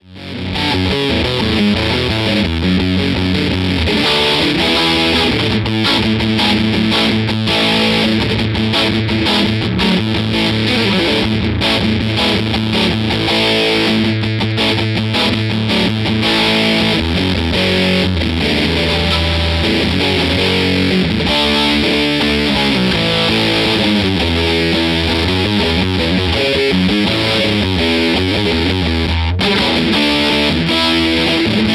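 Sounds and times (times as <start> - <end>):
TC15 amplifier channel 1 crunch guitar tone: 0.0 - 31.7.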